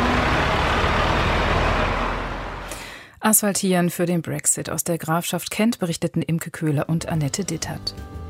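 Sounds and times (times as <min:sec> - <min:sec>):
heavy road traffic with trucks driving past: 0:00.0 - 0:02.9
speech: 0:03.2 - 0:08.1.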